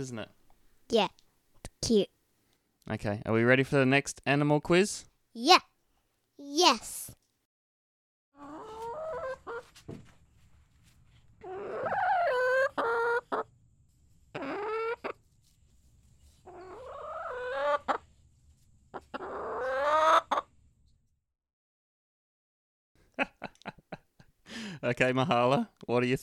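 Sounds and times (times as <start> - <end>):
speech: 0.0 - 1.2, 1.8 - 2.2, 2.9 - 5.7, 6.4 - 7.2, 24.8 - 26.2
relaxed hen clucking: 8.4 - 9.7, 11.4 - 13.5, 14.3 - 15.2, 16.5 - 18.0, 18.9 - 20.5
laughter: 23.2 - 24.8.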